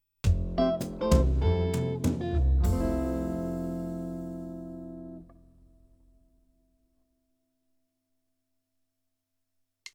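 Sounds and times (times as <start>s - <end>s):
clave single beat: 0.3s - 3.6s.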